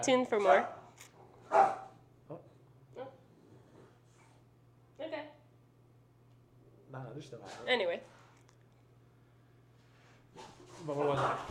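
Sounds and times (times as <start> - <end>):
speech: 0.0 - 0.8, 1.5 - 2.4, 6.9 - 8.2, 10.4 - 11.4
low steady hum: 0.0 - 11.4
dog barking at a cat: 1.5 - 2.0.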